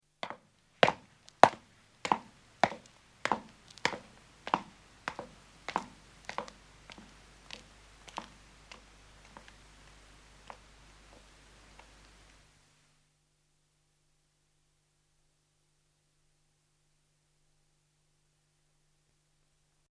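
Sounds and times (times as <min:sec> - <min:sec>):
man's footsteps descending stone steps: 0:00.2 - 0:12.5.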